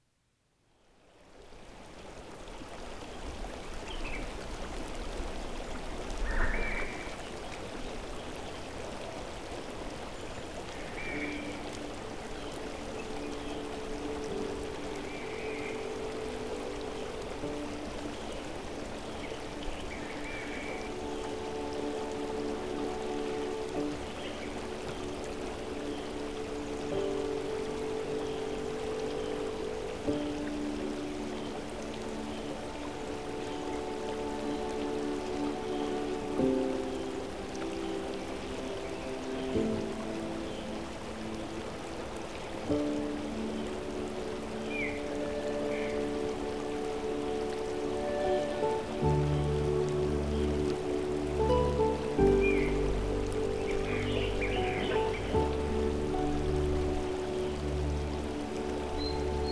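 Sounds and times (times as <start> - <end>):
stream flowing: 1.0 - 59.5.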